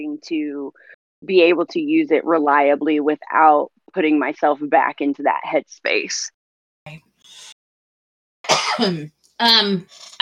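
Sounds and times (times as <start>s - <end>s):
speech: 0.0s - 7.1s, 8.7s - 10.2s
harsh raspy voiced coughing: 8.4s - 9.0s.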